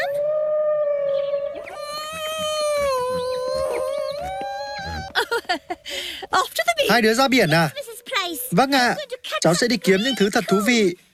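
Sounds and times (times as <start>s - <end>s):
whale singing: 0.0s - 5.2s
laughter: 1.6s - 6.8s
speech: 6.3s - 7.8s, 8.5s - 11.0s.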